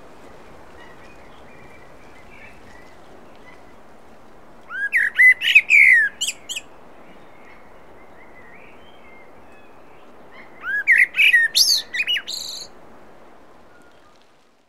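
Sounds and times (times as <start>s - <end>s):
Common blackbird Turdus merula singing mellow whistled phrases: 4.7s - 6.7s, 10.4s - 12.7s.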